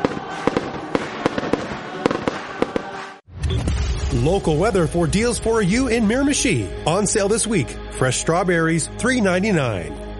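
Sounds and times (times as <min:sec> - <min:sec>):
Canada Day fireworks bursting at the Kin Centre in Miramichi: 0:00.0 - 0:04.2
speech: 0:04.2 - 0:10.0.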